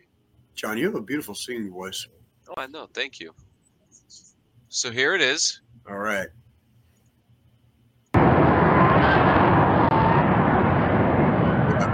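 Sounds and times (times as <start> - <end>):
speech: 0.6 - 3.4, 4.0 - 6.4
aircraft landing with a failing thruster: 8.2 - 11.9.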